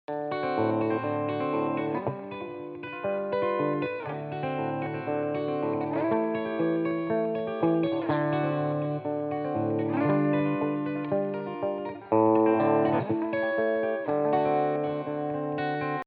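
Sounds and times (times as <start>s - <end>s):
pedal steel guitar backing: 0.1s - 16.0s.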